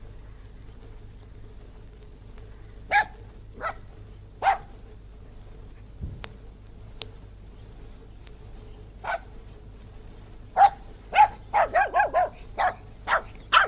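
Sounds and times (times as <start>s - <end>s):
faint clicks: 0.0s - 4.0s, 4.6s - 10.7s
West Highland white terrier yapping and barking outdoors: 2.9s - 4.7s, 9.0s - 9.3s, 10.6s - 13.6s.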